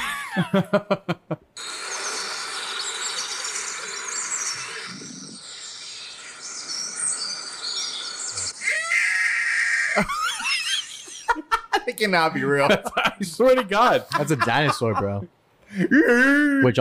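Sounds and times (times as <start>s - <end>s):
laughter: 0.0s - 1.4s, 10.0s - 16.7s
speech: 0.4s - 1.8s, 10.0s - 10.2s, 12.0s - 16.7s
eagle screeching: 2.8s - 7.0s, 8.1s - 11.1s.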